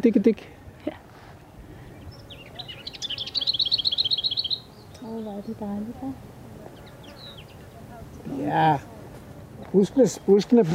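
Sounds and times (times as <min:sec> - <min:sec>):
speech: 0:00.0 - 0:01.0, 0:05.1 - 0:06.3, 0:08.2 - 0:08.9, 0:09.7 - 0:10.7
faint noise: 0:00.0 - 0:10.7
lesser whitethroat singing: 0:01.4 - 0:08.8.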